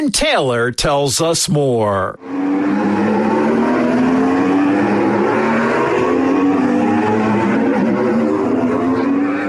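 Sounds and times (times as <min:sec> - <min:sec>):
speech: 0:00.0 - 0:03.0
electric Formula E racing cars at the Cape Town E-Prix: 0:02.2 - 0:09.4.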